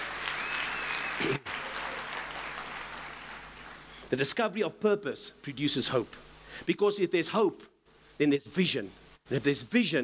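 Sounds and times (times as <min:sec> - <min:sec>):
audience applause: 0:00.0 - 0:04.0
speech: 0:04.1 - 0:10.0.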